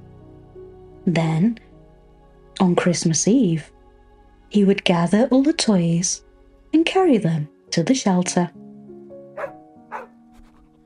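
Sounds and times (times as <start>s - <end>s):
speech: 1.0s - 1.7s, 2.6s - 3.8s, 4.5s - 8.6s
dog barking softly: 9.4s - 10.6s
faint yips: 9.4s - 10.6s.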